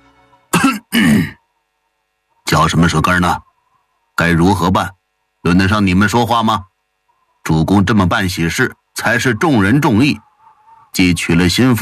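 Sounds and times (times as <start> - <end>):
man clearing his throat with a harsh gravelly cough: 0.5 - 1.4
speech: 2.7 - 3.5, 4.2 - 6.7, 7.4 - 10.3, 10.9 - 11.8.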